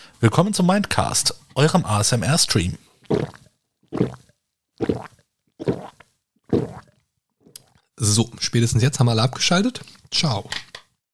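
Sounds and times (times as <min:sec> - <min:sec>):
speech: 0:00.2 - 0:04.2, 0:08.0 - 0:10.6
loud wet gulps of someone drinking: 0:02.7 - 0:08.0.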